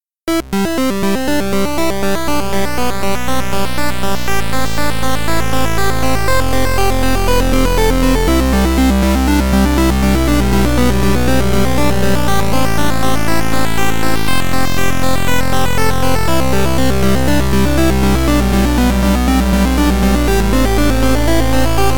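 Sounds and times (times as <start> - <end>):
square wave synth arpeggio: 0.3 - 21.9.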